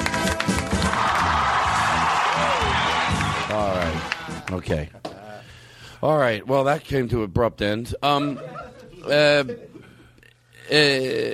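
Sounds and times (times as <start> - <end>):
studio audience applause and cheering: 0.0 - 4.9
whoops and yells from studio audience: 0.8 - 3.5
speech: 4.5 - 5.0, 6.0 - 9.7, 10.7 - 11.3.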